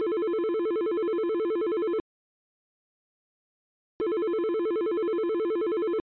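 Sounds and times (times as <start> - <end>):
Yealink phone ringtone: 0.0 - 2.0, 4.0 - 6.0.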